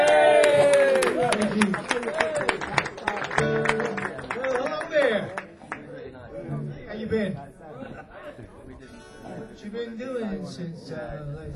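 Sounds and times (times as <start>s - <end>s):
people cheering and whooping: 0.0s - 2.7s
crowd applauding: 0.0s - 5.9s
laughter: 7.6s - 8.8s.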